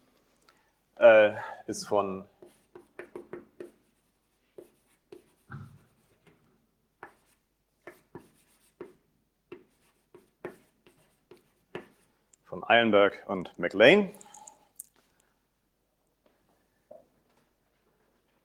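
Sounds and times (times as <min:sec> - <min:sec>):
speech: 0:01.0 - 0:02.3, 0:12.7 - 0:14.3
handwriting scratching: 0:02.4 - 0:06.3, 0:07.0 - 0:12.2.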